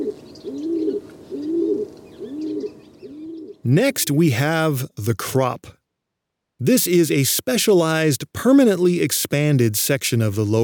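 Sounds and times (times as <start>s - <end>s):
male rock pigeon cooing: 0.0s - 3.6s
faint chirps of other birds: 0.0s - 3.7s
speech: 3.6s - 5.8s, 6.6s - 10.6s.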